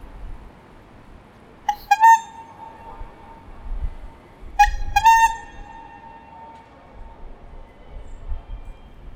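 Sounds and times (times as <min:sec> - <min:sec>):
horn honks: 0:01.7 - 0:03.5, 0:04.6 - 0:06.7.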